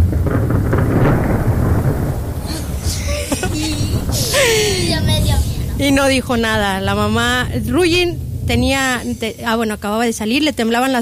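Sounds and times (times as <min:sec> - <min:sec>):
rain: 0:00.0 - 0:10.9
thunder from a lightning strike rumbling: 0:00.0 - 0:10.9
wind: 0:00.0 - 0:10.9
laughter: 0:02.5 - 0:05.6
speech: 0:06.0 - 0:10.9.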